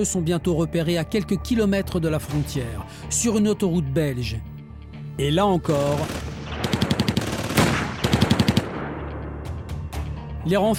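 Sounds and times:
speech: 0:00.0 - 0:04.5, 0:05.2 - 0:06.7, 0:10.4 - 0:10.7
gunshot bursts in a police shootout with gang members on a motorway: 0:05.7 - 0:09.4.

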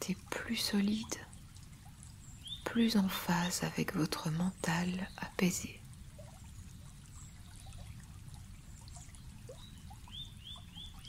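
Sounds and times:
speech: 0:00.0 - 0:01.3, 0:02.7 - 0:05.8
gentle trickle of stream water: 0:00.0 - 0:11.0
bird chirps: 0:09.6 - 0:11.0.

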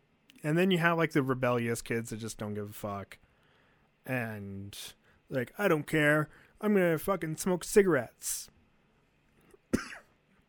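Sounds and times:
speech: 0:00.4 - 0:03.2, 0:04.0 - 0:08.6, 0:09.7 - 0:10.0
single sharp raspy cough: 0:09.6 - 0:10.2.

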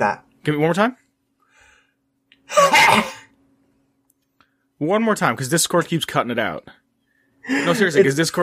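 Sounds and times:
speech: 0:00.0 - 0:01.0, 0:02.5 - 0:03.2, 0:04.8 - 0:06.8, 0:07.4 - 0:08.4
deliberate dry throaty racking cough: 0:02.5 - 0:03.3.

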